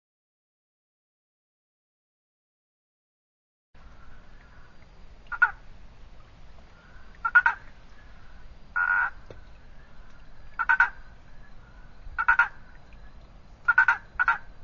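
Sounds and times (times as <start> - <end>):
Boana prasina treefrog giving pulsed croaking calls: 3.8 - 14.6.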